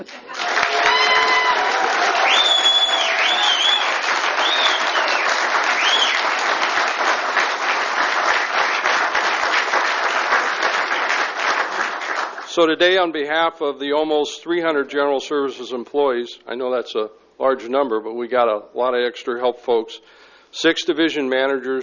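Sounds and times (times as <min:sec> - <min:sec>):
audience applauding and cheering: 0:00.0 - 0:12.5
shrill whistles from an audience: 0:02.2 - 0:06.3
speech: 0:12.6 - 0:21.8.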